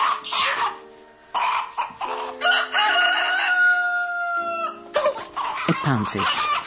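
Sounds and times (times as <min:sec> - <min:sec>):
rooster crowing: 0:01.4 - 0:05.5
speech: 0:05.8 - 0:06.6.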